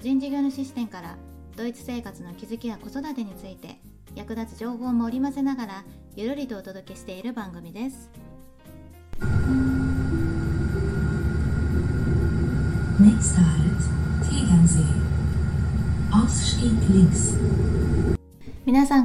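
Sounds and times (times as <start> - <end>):
speech: 0.0 - 8.3, 13.0 - 15.2, 16.1 - 19.0
heavy steady low rumble of a moving rail carriage: 9.2 - 18.2
German onboard train announcement over a speaker system: 12.5 - 18.0.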